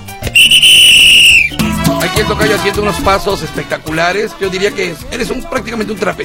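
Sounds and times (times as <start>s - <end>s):
shrill whistle blast: 0.3s - 1.6s
speech: 2.2s - 6.2s.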